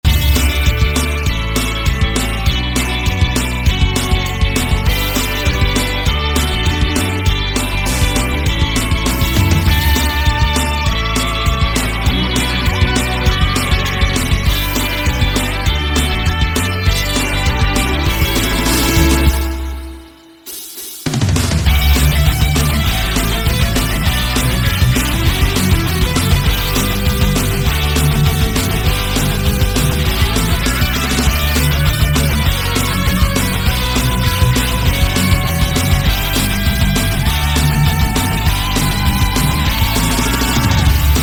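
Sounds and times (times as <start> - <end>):
rock music: 0.0 - 41.2.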